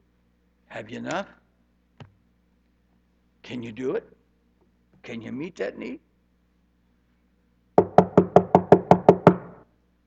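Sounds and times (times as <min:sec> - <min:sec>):
speech: 0:00.7 - 0:01.4, 0:03.5 - 0:04.2, 0:05.0 - 0:06.0
firm knocking on a wooden door: 0:07.8 - 0:09.6.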